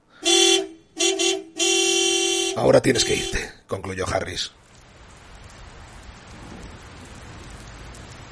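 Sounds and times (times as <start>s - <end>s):
taxi car horn honking from the street at night: 0.2s - 3.6s
speech: 2.6s - 4.6s.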